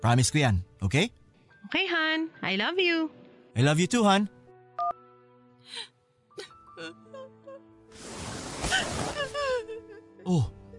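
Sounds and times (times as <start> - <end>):
speech: 0.0 - 5.0, 5.7 - 7.0, 9.6 - 10.6
woman sobbing: 5.6 - 7.8, 8.7 - 10.7.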